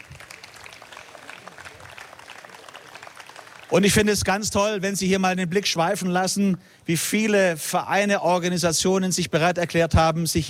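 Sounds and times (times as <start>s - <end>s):
crowd applauding outdoors at a neighbourhood festival: 0.0s - 4.6s
speech: 3.7s - 10.4s.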